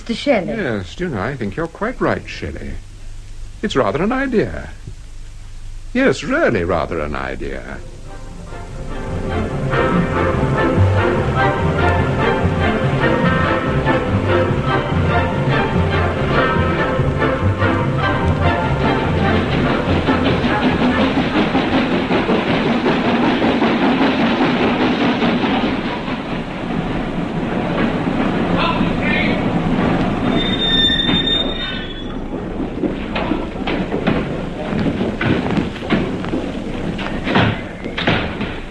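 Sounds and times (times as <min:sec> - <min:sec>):
speech: 0:00.1 - 0:02.9, 0:03.6 - 0:04.8, 0:05.9 - 0:08.0
train wheels clattering on rails: 0:06.0 - 0:38.6
shrill metallic train wheel squeal as it slows: 0:09.8 - 0:33.5.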